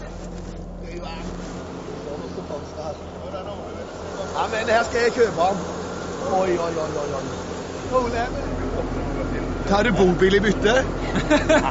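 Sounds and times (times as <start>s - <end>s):
vehicle engine running while driven to a camper camp beside a harness racing track: 0.0s - 11.6s
speech: 4.4s - 11.6s
laughter: 11.0s - 11.6s.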